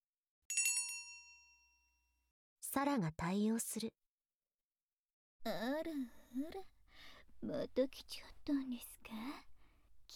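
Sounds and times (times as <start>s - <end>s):
desk call bell struck, bright metallic ring: 0.5s - 2.0s
speech: 2.8s - 4.0s, 5.4s - 6.7s, 7.4s - 9.5s.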